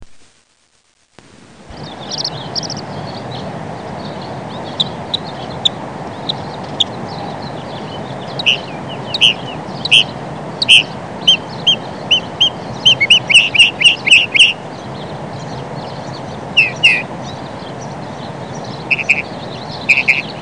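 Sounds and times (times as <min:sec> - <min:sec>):
Northern Mockingbird: 0:01.7 - 0:14.6, 0:16.6 - 0:17.1, 0:18.8 - 0:20.3.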